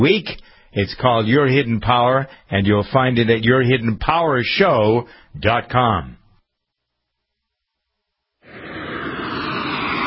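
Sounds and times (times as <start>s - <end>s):
speech: 0.0s - 6.2s
loud airplane engine roar: 8.5s - 10.0s.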